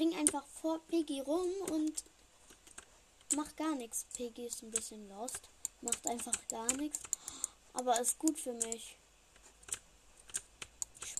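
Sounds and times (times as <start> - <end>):
speech: 0.0 - 2.1, 3.3 - 9.0
computer keyboard keys clicking while gaming: 4.1 - 8.8, 9.6 - 11.1.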